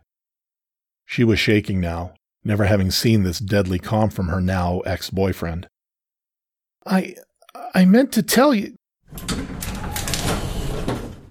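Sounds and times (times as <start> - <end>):
speech: 1.1 - 5.7, 6.8 - 9.4
elevator door sliding open with a rumbling whoosh: 9.1 - 11.2.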